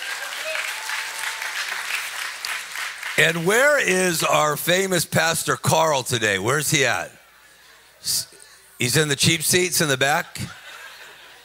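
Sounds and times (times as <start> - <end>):
audience applause: 0.0 - 3.8
speech: 3.2 - 7.2, 8.0 - 10.6
laughter: 10.3 - 11.4.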